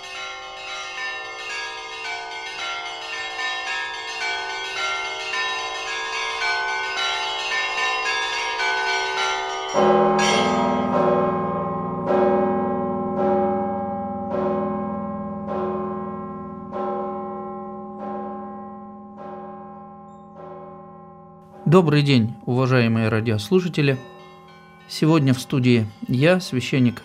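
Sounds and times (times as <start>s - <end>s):
church bells ringing in a dense overlapping peal: 0.0s - 27.0s
deeper church bell striking: 9.7s - 26.0s
speech: 21.8s - 24.1s, 25.0s - 27.0s.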